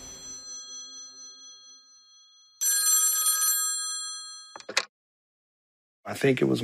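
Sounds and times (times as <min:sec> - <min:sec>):
old rotary phone mechanical bell ringing on a coffee table: 0:00.0 - 0:04.8
speech: 0:06.1 - 0:06.6.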